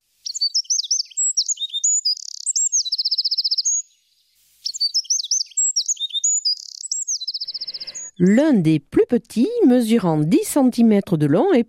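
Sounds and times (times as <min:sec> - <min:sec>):
Eurasian wren singing: 0:00.2 - 0:08.2
speech: 0:08.2 - 0:11.6.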